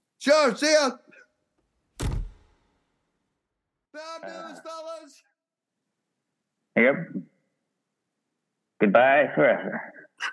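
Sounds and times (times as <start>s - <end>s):
speech: 0.2s - 1.0s, 4.0s - 5.3s, 6.8s - 7.3s, 8.8s - 10.0s
heavy main door swinging shut: 2.0s - 2.6s.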